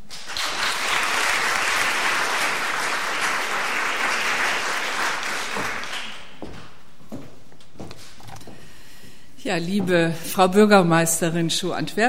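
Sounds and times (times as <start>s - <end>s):
audience applauding: 0.0s - 6.5s
speech: 9.5s - 12.0s.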